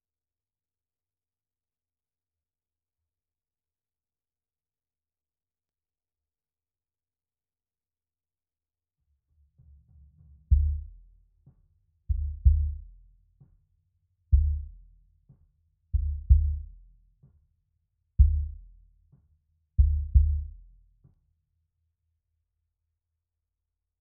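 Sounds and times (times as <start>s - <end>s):
sub bass: 10.5s - 11.0s, 12.1s - 13.0s, 14.4s - 14.8s, 16.0s - 16.8s, 18.2s - 18.6s, 19.8s - 20.6s.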